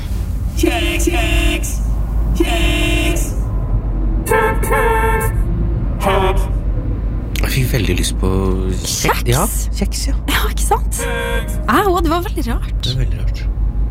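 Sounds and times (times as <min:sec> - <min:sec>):
low rumble of idling traffic in a traffic jam: 0:00.0 - 0:13.9
speech: 0:00.6 - 0:03.4, 0:07.6 - 0:13.5
car horns honking in a traffic jam: 0:00.6 - 0:03.5, 0:04.2 - 0:06.8, 0:10.5 - 0:12.6.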